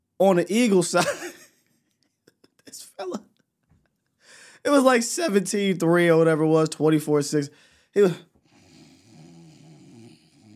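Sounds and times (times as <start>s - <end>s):
speech: 0.2s - 1.4s, 2.7s - 3.3s, 4.6s - 8.3s
voice imitating snoring: 8.5s - 10.5s.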